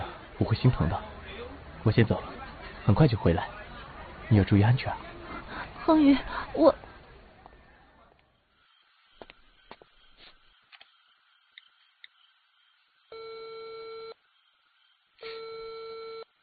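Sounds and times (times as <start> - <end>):
faint noise: 0.0 - 16.4
speech: 0.4 - 1.1, 1.8 - 3.6, 4.3 - 5.1, 5.8 - 6.8
laughter: 2.0 - 6.3
ringback tone of an unanswered phone call: 13.1 - 14.2, 15.2 - 16.2.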